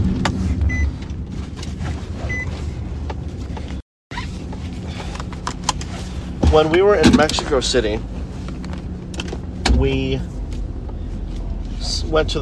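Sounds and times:
car engine starting: 0.0 - 12.4
speech: 6.5 - 8.2, 9.8 - 10.3, 11.9 - 12.4.

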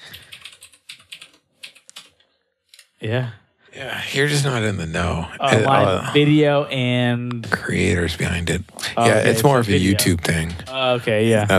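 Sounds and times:
rapid crisp typing on computer keys: 0.0 - 2.2
speech: 3.0 - 11.5
laughter: 3.1 - 11.5.

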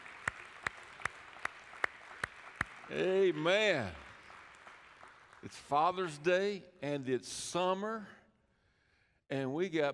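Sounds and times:
group clapping in unison: 0.0 - 6.4
speech: 2.9 - 4.0, 5.4 - 8.2, 9.3 - 9.9.

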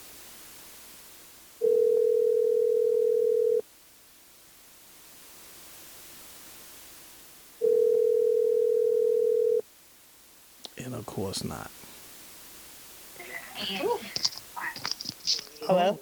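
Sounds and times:
faint hiss: 0.0 - 15.9
electronic ringback tone of an outgoing phone call: 1.6 - 3.6, 7.6 - 9.6
speech: 11.1 - 11.9, 13.6 - 14.3, 15.3 - 15.9.

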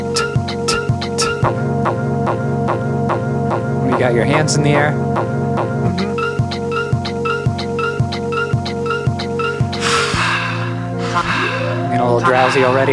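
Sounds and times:
glitchy electronic pop music: 0.0 - 12.9
speech: 4.0 - 5.4, 12.0 - 12.9
airy breath-like gasps and exhales: 9.7 - 11.6.

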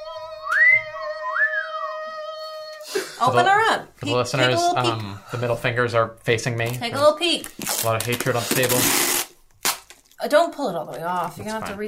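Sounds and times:
person whistling a tune: 0.2 - 3.0
speech: 3.0 - 9.1, 10.2 - 11.8.

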